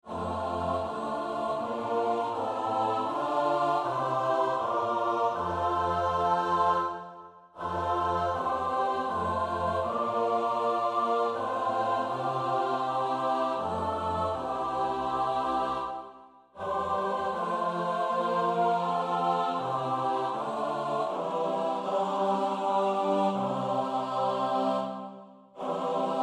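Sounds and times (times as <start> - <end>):
soprano alto tenor bass choir singing: 0.0 - 26.2.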